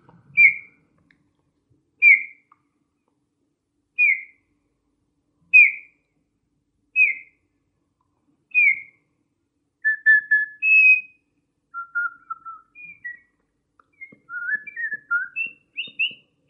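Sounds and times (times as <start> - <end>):
Eurasian bullfinch piping whistle call: 0.4 - 0.8, 2.0 - 2.5, 4.0 - 4.4, 5.5 - 5.9, 7.0 - 7.3, 8.5 - 9.0, 9.9 - 11.2, 11.8 - 13.2, 13.9 - 16.2.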